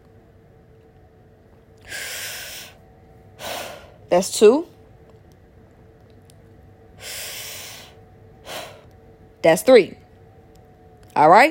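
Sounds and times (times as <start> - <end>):
hiss: 0.0 - 11.0
deep breath taken during a group breathing exercise: 1.8 - 2.8, 3.4 - 4.0, 7.0 - 8.9
speech: 4.1 - 4.7, 9.4 - 10.0, 11.2 - 11.5.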